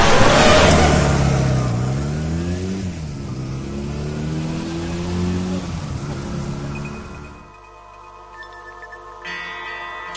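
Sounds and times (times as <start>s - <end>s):
motorcycle engine revving as the bike rides away: 0.0s - 7.5s.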